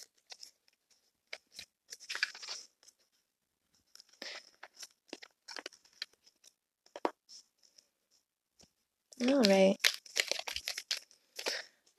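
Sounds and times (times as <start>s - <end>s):
tarot cards being shuffled and drawn: 1.3s - 2.7s, 4.0s - 7.3s, 9.2s - 11.6s.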